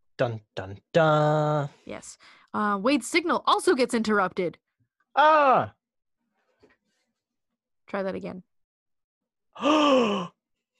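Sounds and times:
speech: 0:00.2 - 0:04.6, 0:05.2 - 0:05.8, 0:07.9 - 0:08.5, 0:09.6 - 0:10.4
person gasping: 0:09.6 - 0:10.4.

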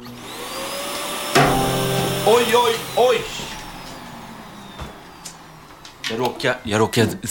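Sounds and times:
vacuum cleaner running: 0:00.0 - 0:07.2
sudden knock: 0:01.4 - 0:05.2
speech: 0:02.3 - 0:03.5, 0:06.1 - 0:07.2.

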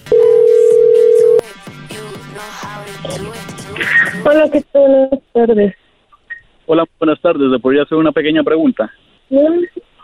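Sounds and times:
steady loud telephone dial tone: 0:00.1 - 0:01.4
speech: 0:03.8 - 0:05.8, 0:06.7 - 0:09.9.

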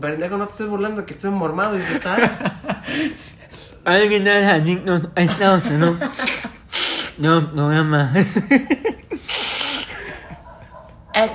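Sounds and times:
speech: 0:00.0 - 0:06.3, 0:07.2 - 0:08.9
laughter: 0:01.8 - 0:03.3, 0:05.2 - 0:06.7, 0:08.0 - 0:11.0
stifled sneeze being held back: 0:06.1 - 0:07.2, 0:09.2 - 0:10.5.

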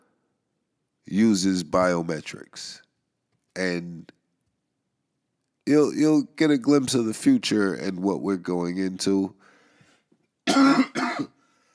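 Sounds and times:
speech: 0:01.0 - 0:02.8, 0:03.6 - 0:04.2, 0:05.6 - 0:09.5
harsh chesty coughing: 0:10.4 - 0:11.4.

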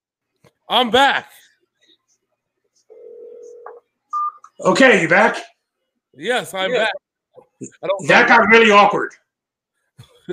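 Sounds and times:
speech: 0:00.7 - 0:01.4, 0:04.6 - 0:05.5, 0:06.2 - 0:07.0, 0:07.6 - 0:09.2
telephone dialing tone: 0:02.9 - 0:04.4.

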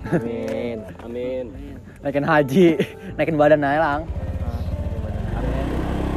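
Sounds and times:
speech: 0:00.1 - 0:04.2
motorcycle engine passing by: 0:03.9 - 0:06.1.

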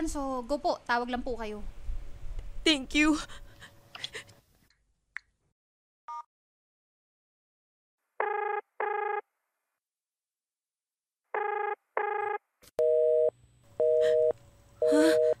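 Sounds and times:
speech: 0:00.0 - 0:01.8, 0:02.6 - 0:03.4
phone busy tone beeps after call rejected: 0:11.4 - 0:15.3.

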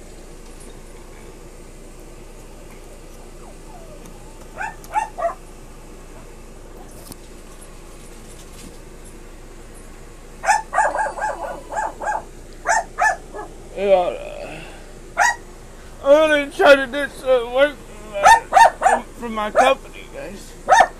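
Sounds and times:
dog barking: 0:03.2 - 0:05.5, 0:10.4 - 0:13.6, 0:15.2 - 0:15.5, 0:18.2 - 0:19.8, 0:20.7 - 0:20.9
people talking: 0:13.8 - 0:14.7, 0:16.0 - 0:20.6.

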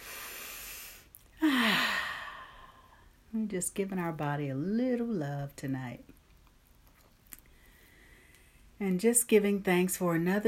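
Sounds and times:
breathing in through nose, out through mouth: 0:00.0 - 0:03.2, 0:07.4 - 0:08.7
soft voiced sigh: 0:01.4 - 0:03.0
speech: 0:03.3 - 0:06.2, 0:08.8 - 0:10.4.

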